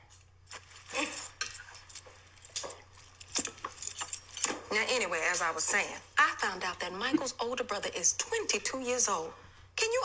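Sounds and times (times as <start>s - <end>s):
faint low hum: 0.0s - 10.0s
metallic keys jingling and clinking: 3.0s - 4.5s
speech: 4.8s - 10.0s.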